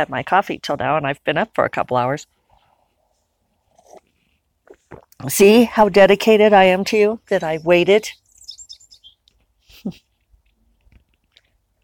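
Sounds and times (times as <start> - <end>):
speech: 0.0 - 2.4, 4.9 - 8.2, 9.8 - 10.0
wren chirping by its birdhouse on a bush: 6.3 - 10.0.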